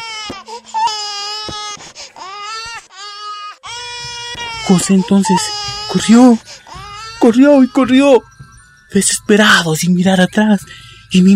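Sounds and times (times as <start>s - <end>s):
baby crying: 0.0s - 8.2s
speech: 4.7s - 6.6s, 7.2s - 8.3s, 8.9s - 11.3s.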